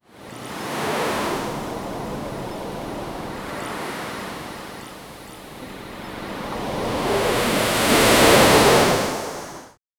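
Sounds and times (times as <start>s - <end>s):
ocean waves crashing on the shore: 0.4s - 9.8s.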